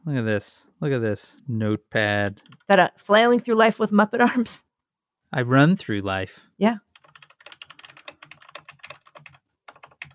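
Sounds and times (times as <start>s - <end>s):
speech: 0.1s - 4.7s, 5.3s - 6.8s
typing on a computer keyboard with pastel rainbow keys: 2.4s - 2.7s, 6.9s - 10.1s.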